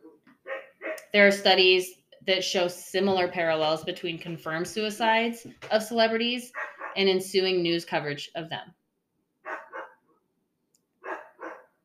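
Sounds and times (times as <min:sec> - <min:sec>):
female dog barking outside: 0:00.4 - 0:01.1, 0:06.5 - 0:07.0, 0:09.4 - 0:10.2, 0:11.0 - 0:11.8
speech: 0:01.1 - 0:08.8.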